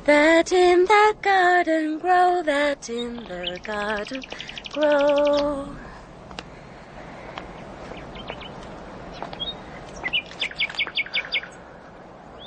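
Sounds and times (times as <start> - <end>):
speech: 0.0 - 5.9
steady outdoor hiss: 0.0 - 12.4
bird singing at night: 2.9 - 5.7, 7.6 - 11.7.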